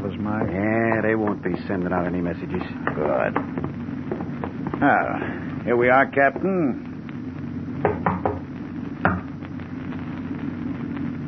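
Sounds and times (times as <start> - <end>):
low rumble: 0.0 - 11.2
speech: 1.4 - 3.8, 4.8 - 6.9
knocking on a locked door: 7.8 - 8.4.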